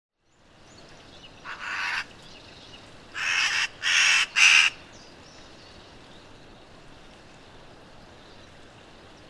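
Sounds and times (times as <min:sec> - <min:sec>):
Eurasian magpie giving harsh rasping chatter notes: 0:01.4 - 0:02.0, 0:03.2 - 0:04.8.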